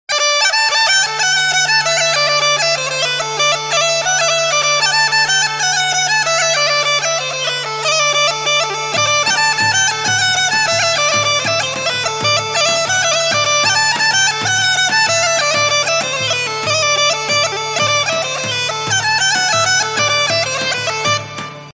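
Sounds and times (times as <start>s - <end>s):
Bulgarian bagpipe: 0.1s - 21.7s.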